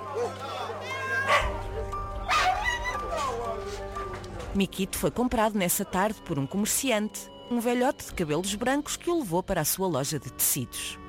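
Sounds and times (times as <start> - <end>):
dogs barking and yipping at a large animal market: 1.1 - 3.7
animal cries at a large market: 2.2 - 3.6
speech: 4.5 - 11.0.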